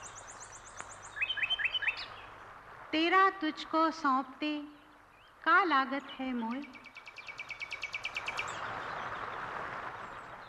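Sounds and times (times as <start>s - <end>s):
Asian koel calling: 0.0s - 2.4s, 4.0s - 9.2s
outdoor hiss: 0.0s - 10.4s
speech: 2.9s - 4.8s, 5.4s - 6.8s.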